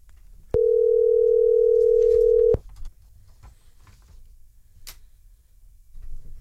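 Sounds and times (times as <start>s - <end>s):
electronic ringback tone of an outgoing phone call: 0.6s - 2.6s.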